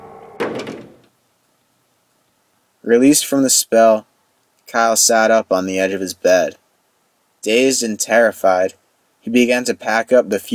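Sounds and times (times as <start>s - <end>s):
door closing on whining hinges: 0.0s - 1.1s
speech: 2.9s - 4.1s, 4.7s - 6.6s, 7.4s - 10.5s.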